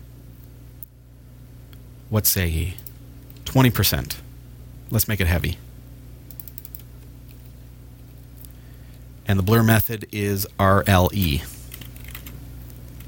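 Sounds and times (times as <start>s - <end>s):
low steady hum: 0.0s - 13.0s
speech: 2.1s - 2.9s, 3.6s - 4.2s, 4.9s - 5.6s, 9.3s - 11.5s
typing on a computer keyboard: 6.3s - 6.9s, 11.1s - 12.4s.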